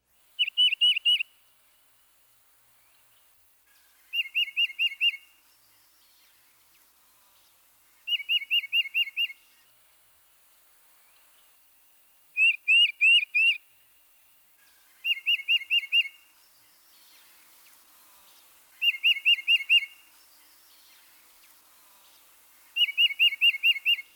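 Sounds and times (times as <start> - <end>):
titmouse two-noted whistled song: 0.4 - 1.3, 4.1 - 5.3, 8.1 - 9.4, 12.4 - 13.6, 15.0 - 17.1, 18.8 - 20.9, 22.8 - 24.1.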